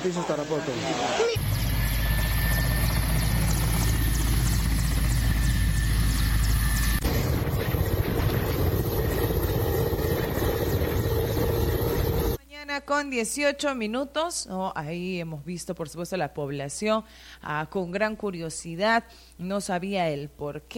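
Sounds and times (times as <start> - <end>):
speech: 0.0 - 1.7, 12.8 - 20.7
helicopter rotor noise during landing: 1.2 - 12.4.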